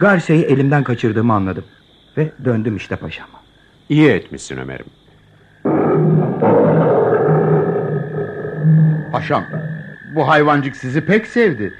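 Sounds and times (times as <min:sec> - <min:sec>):
speech: 0:00.0 - 0:05.0, 0:09.2 - 0:11.7
lion roaring: 0:05.6 - 0:10.3.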